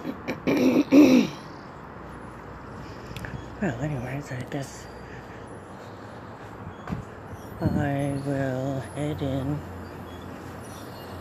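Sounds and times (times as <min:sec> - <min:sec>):
birds giving low hooting calls outdoors: 0:00.0 - 0:11.1
speech: 0:03.6 - 0:04.9, 0:07.6 - 0:09.7.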